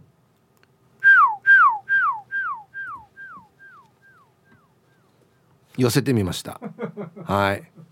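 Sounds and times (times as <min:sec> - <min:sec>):
person whistling downward-sliding notes: 0:01.0 - 0:04.3
speech: 0:05.8 - 0:07.8.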